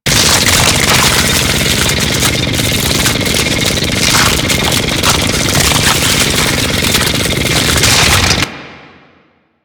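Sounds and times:
mining drill: 0.0 - 8.5.

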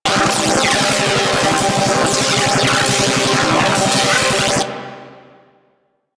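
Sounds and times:
turret chain lightning beam loop: 0.1 - 4.8.

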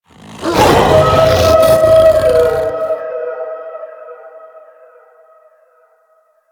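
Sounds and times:
alerted enemy howl vocal: 0.1 - 5.4.

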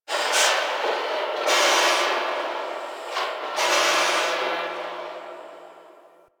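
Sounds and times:
construction site ambience: 0.0 - 6.3.

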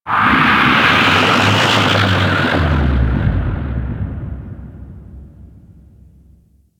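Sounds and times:
ocean kraken bellow ambience: 0.1 - 5.0.

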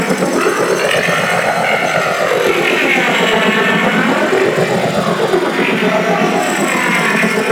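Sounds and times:
space black hole ambience loop: 0.0 - 7.5.

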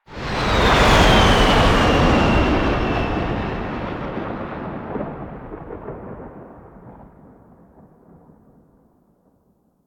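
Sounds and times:
plane flying by: 0.0 - 5.9.

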